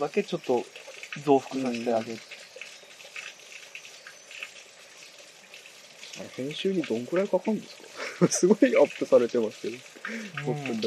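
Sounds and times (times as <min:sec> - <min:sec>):
speech: 0:00.0 - 0:02.3, 0:06.2 - 0:10.8
steady flowing water rushing: 0:00.0 - 0:10.8
laughter: 0:08.0 - 0:08.9.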